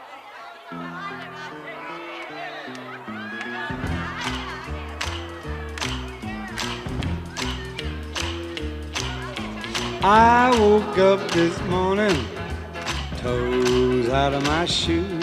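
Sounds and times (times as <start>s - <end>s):
laughter: 0.0s - 8.0s, 9.0s - 14.4s
instrumental song intro with bass and chords: 0.9s - 15.2s
drums and sharp percussive hits: 3.7s - 15.2s
speech: 10.0s - 12.4s, 13.2s - 15.2s.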